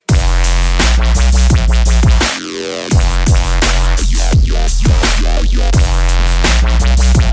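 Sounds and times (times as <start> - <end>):
dubstep bass: 0.0 - 7.3.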